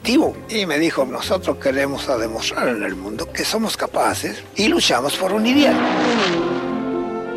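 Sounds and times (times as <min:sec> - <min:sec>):
speech: 0:00.0 - 0:06.5
race car engine revving: 0:05.5 - 0:07.2.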